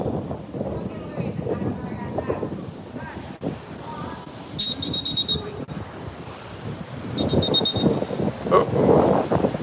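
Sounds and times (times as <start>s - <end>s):
gusty wind buffeting the microphone by the ocean shore: 0.0s - 9.6s
ocean surf rumbling: 0.0s - 9.6s
short shrill whistle-like bursts: 4.6s - 5.5s, 7.2s - 8.0s.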